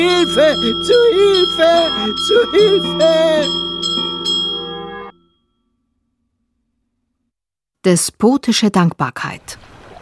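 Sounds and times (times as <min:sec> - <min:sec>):
speech: 0:00.0 - 0:04.0, 0:07.8 - 0:09.7
bell being rung vigorously: 0:00.0 - 0:06.0.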